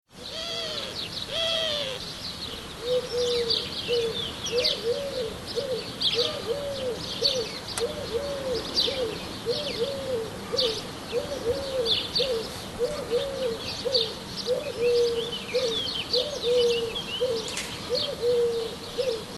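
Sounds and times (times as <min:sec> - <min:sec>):
Eurasian collared dove: 0:00.2 - 0:19.3.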